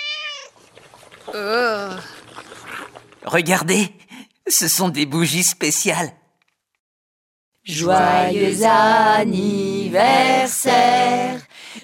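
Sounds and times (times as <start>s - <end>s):
cat meowing: 0.0s - 0.6s
speech: 1.3s - 2.2s, 3.2s - 6.2s, 7.7s - 11.8s.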